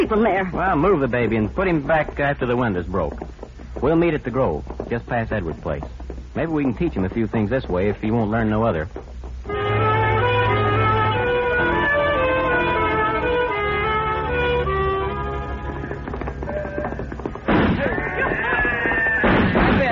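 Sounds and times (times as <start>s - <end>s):
speech: 0.0s - 9.1s
chaotic din of sustained wailing tones: 9.5s - 19.6s
gunshots during a night raid: 17.5s - 18.0s, 19.2s - 19.8s.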